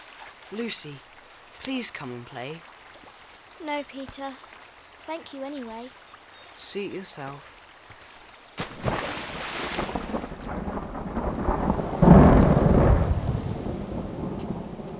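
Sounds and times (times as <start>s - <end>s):
steady rain: 0.0s - 14.9s
speech: 0.5s - 2.7s, 3.6s - 4.5s, 5.1s - 6.0s, 6.6s - 7.5s
sharp thunder crack: 9.8s - 14.9s.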